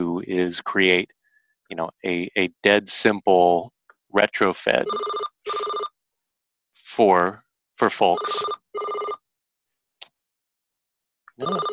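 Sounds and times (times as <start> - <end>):
speech: 0.0 - 5.9, 7.0 - 9.2, 11.4 - 11.7
electronic telephone ringing: 4.8 - 6.0, 8.1 - 9.2, 11.4 - 11.7.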